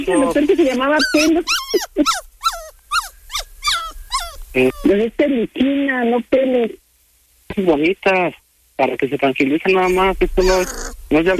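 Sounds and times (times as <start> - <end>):
speech: 0.0 - 2.3, 4.6 - 6.8, 7.6 - 11.3
small pet dog whimpering: 0.0 - 5.0, 10.4 - 11.1.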